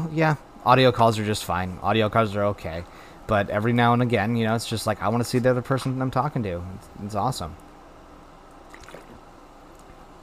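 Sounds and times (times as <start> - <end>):
speech: 0.2 - 7.6
sipping fizzy sparkling water: 8.5 - 10.1
wet slurping and squishing sounds: 8.7 - 9.2.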